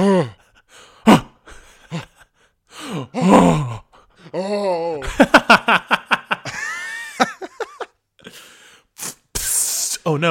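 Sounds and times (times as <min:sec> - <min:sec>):
speech: 0:00.0 - 0:00.4
person gasping huskily in a toilet cubicle: 0:00.0 - 0:05.0, 0:08.2 - 0:09.5
laughter: 0:05.0 - 0:08.0.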